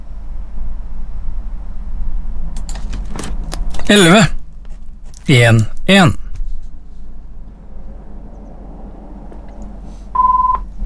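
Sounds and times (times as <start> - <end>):
low constant rumble: 0.0 - 10.8
speech: 3.9 - 4.3, 5.3 - 6.2
telephone ringing with a short electronic tone: 10.2 - 10.7.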